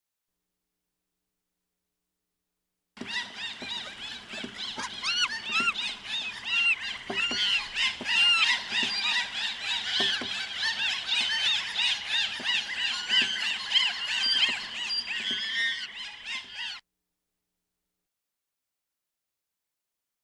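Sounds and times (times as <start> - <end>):
monkeys calling: 3.0 - 16.8.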